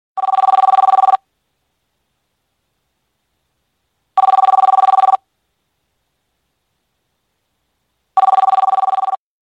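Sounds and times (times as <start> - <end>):
office phone ringtone: 0.2 - 1.2, 4.2 - 5.2, 8.2 - 9.2.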